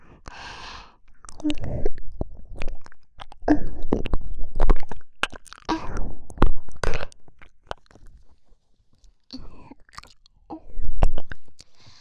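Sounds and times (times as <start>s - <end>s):
breathing: 0.0s - 1.0s, 11.6s - 12.0s
wet mouth biting and chewing on an ear: 1.2s - 8.4s, 9.0s - 11.8s.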